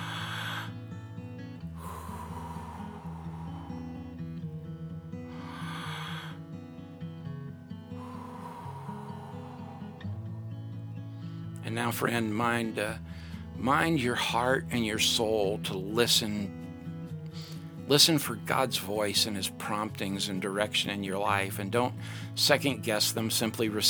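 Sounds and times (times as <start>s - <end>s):
slow deep breathing during a guided prayer: 0.0s - 11.7s, 13.0s - 13.6s, 16.5s - 17.9s, 21.9s - 22.4s
soft sustained music: 0.0s - 23.8s
speech: 11.7s - 16.6s, 17.9s - 23.8s.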